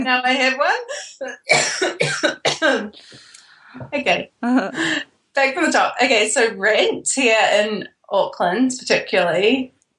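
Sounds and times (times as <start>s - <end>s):
speech: 0.0s - 3.0s, 3.7s - 9.8s
person coughing harshly: 1.5s - 2.8s.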